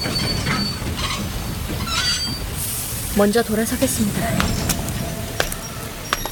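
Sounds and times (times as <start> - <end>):
high-pitched train wheel squeals: 0.0 - 6.3
train pulling into station with low rumble: 0.0 - 6.3
train brake hiss: 1.4 - 6.3
speech: 3.2 - 4.6.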